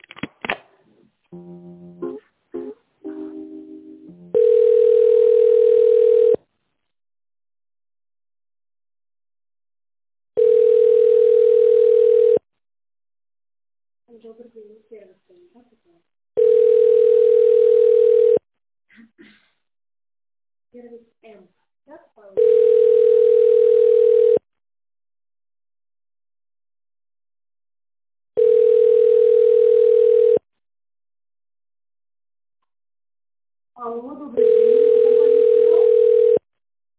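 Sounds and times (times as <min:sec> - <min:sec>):
telephone ringback tone while a call is being transferred: 0:04.3 - 0:06.4, 0:10.4 - 0:12.4, 0:16.4 - 0:18.4, 0:22.4 - 0:24.4, 0:28.4 - 0:30.4, 0:34.4 - 0:36.4.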